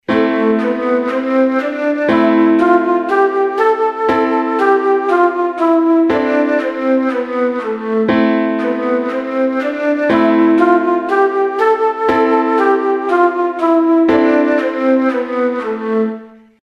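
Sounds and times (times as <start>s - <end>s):
A natural minor scale: 0.0s - 16.6s.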